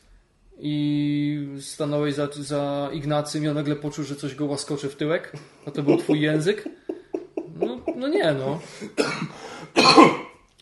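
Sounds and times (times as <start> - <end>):
speech: 0.6 - 1.0, 1.6 - 6.9, 7.6 - 10.3
laughter: 5.7 - 8.8
person coughing: 5.9 - 6.5, 8.8 - 10.3.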